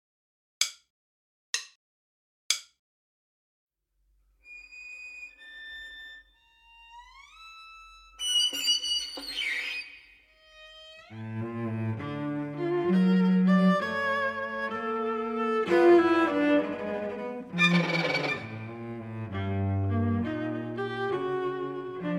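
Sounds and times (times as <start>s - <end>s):
orchestral music without first violins: 5.5s - 22.1s.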